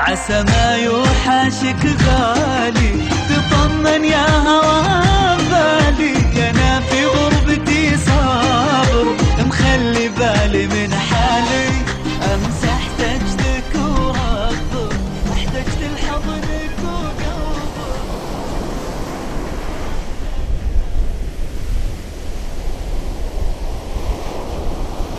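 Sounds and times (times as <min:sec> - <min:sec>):
speech: 0:00.0 - 0:07.2
music: 0:00.0 - 0:18.7
rushing sea waves from boats racing: 0:00.0 - 0:25.1
wind roaring around boats racing across the sea: 0:03.8 - 0:25.1.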